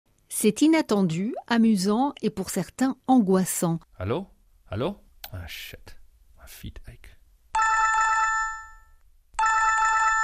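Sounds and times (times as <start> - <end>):
speech: 0.4 - 7.0
telephone ringing with electronic trill: 7.6 - 10.2.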